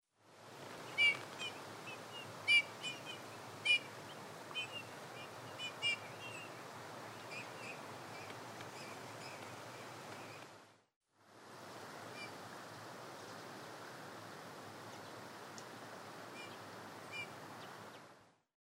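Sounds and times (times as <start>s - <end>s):
steady background hiss: 0.2s - 18.4s
Eurasian bullfinch Pyrrhula pyrrhula calling: 0.9s - 10.4s.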